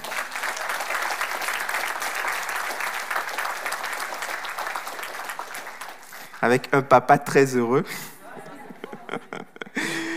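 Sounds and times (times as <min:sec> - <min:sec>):
crowd clapping: 0:00.0 - 0:06.8
speech: 0:06.4 - 0:08.1
laughter: 0:07.9 - 0:10.1.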